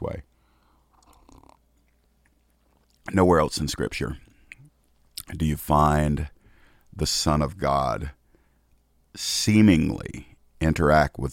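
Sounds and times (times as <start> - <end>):
speech: 0.0 - 0.3, 3.1 - 4.2, 5.3 - 6.4, 7.0 - 8.2, 9.2 - 11.3
person sipping coffee: 0.4 - 3.1
soft swallow: 0.6 - 3.1.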